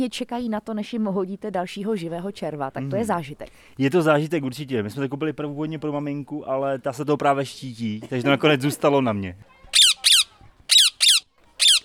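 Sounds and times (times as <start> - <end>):
speech: 0.0 - 9.5
angry all-yellow rose-ringed parakeet squawking: 9.8 - 11.8.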